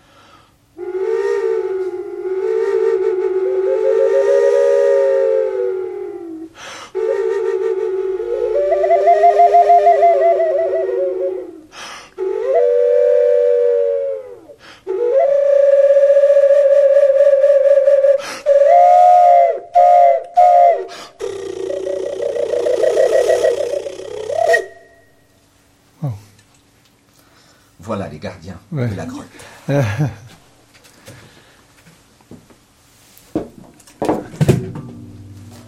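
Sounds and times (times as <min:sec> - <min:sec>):
triple serpent flute playing sustained breathy tones over a drone: 0:00.8 - 0:25.2
laughter: 0:29.7 - 0:30.4.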